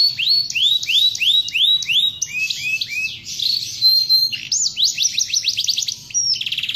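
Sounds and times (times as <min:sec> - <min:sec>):
canary singing: 0:00.0 - 0:06.7.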